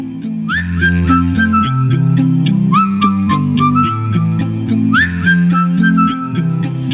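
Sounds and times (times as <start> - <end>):
bright whistle swooping upward: 0.5 - 4.3, 4.9 - 6.6.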